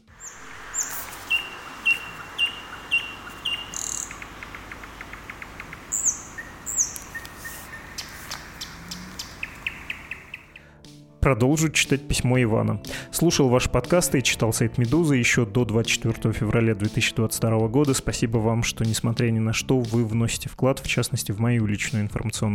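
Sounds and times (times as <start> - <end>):
nightingale singing outdoors at night: 0.0 - 10.8
soft continuous night-time hiss: 0.0 - 10.8
speech: 11.3 - 22.5.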